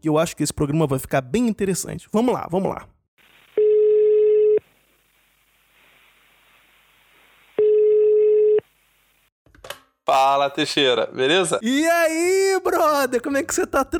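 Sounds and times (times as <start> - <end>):
speech: 0.0 - 3.0, 10.1 - 13.9
phone line ringback tone while placing call: 3.6 - 4.6, 7.6 - 8.7
quiet phone line hiss: 4.7 - 7.6.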